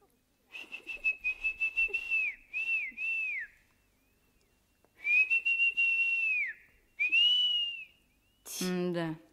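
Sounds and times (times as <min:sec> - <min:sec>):
person whistling long steady high notes to lure snakes: 0:00.5 - 0:03.6, 0:05.0 - 0:08.5.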